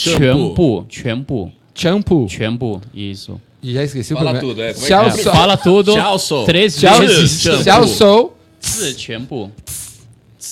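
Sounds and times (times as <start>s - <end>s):
speech: 0.0s - 9.8s
voice imitating a fizzy hiss: 9.6s - 10.1s.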